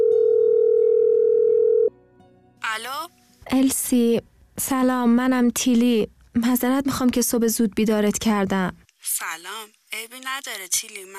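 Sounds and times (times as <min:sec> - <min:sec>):
telephone dial tone: 0:00.0 - 0:01.9
speech: 0:02.8 - 0:11.1.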